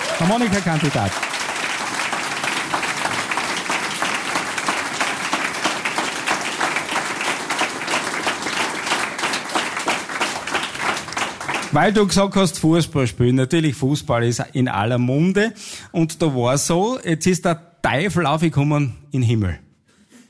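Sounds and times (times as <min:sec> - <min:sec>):
crowd applauding a harmonica contestant: 0:00.0 - 0:12.2
speech: 0:00.2 - 0:01.3, 0:11.8 - 0:19.6.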